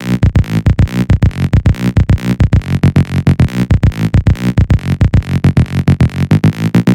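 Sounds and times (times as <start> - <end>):
138 BPM bassline in B minor: 0.0 - 6.9.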